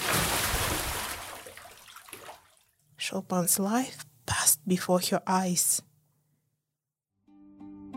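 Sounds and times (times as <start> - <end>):
water poured over a woman: 0.0 - 2.8
speech: 3.1 - 4.1, 4.7 - 5.9.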